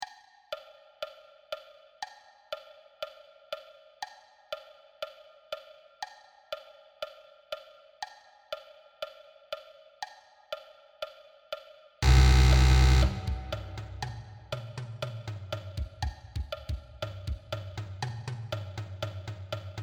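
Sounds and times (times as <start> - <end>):
marching bass drum: 12.0 - 17.8.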